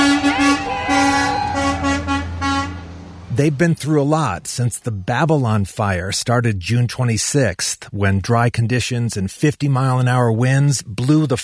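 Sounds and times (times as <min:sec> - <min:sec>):
fire truck horns blaring: 0:00.0 - 0:04.6
heavy fire truck engines rumbling: 0:00.0 - 0:06.8
speech: 0:03.4 - 0:11.4.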